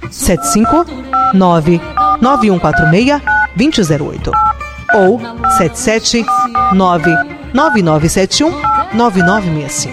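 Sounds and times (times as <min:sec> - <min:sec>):
speech: 0:00.1 - 0:09.9
telephone ringing with short electronic tone bursts: 0:00.3 - 0:03.6, 0:04.3 - 0:07.9, 0:08.6 - 0:09.4
sung or spoken voices: 0:00.4 - 0:03.3, 0:04.9 - 0:09.9.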